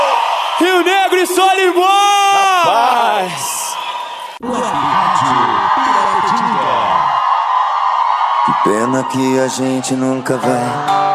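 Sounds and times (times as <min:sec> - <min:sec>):
crowd shouting and whooping happily: 0:00.0 - 0:11.1
speech: 0:00.6 - 0:06.7, 0:08.5 - 0:11.0.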